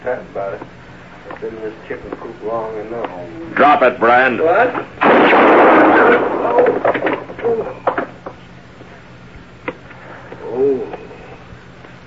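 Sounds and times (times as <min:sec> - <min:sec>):
speech: 0:00.1 - 0:08.0
gunshot: 0:05.0 - 0:07.2
low vocal groan: 0:10.4 - 0:11.2.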